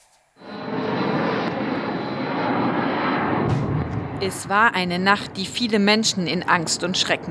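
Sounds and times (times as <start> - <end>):
Russian attack drone or missile engine passing overhead during night attack: 0.3 - 7.3
speech: 4.2 - 7.3.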